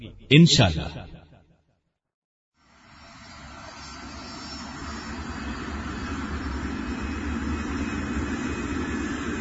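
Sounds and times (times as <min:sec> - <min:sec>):
speech: 0:00.0 - 0:01.0
airplane engine roar at an airport: 0:02.8 - 0:09.3.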